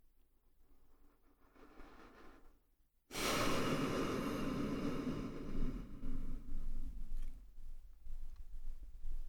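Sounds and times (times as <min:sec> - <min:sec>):
slow deep breaths: 0:01.2 - 0:07.5.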